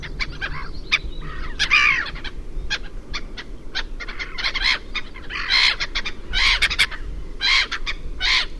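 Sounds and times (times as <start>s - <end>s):
black-headed gull grating cries and screeching: 0.0s - 8.5s
low background noise: 0.0s - 8.5s.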